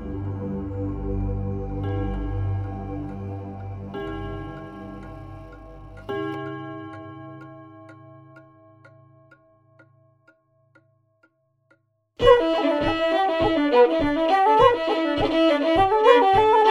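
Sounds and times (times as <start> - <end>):
low sustained hum: 0.0 - 6.1
clock ticking: 1.8 - 16.6.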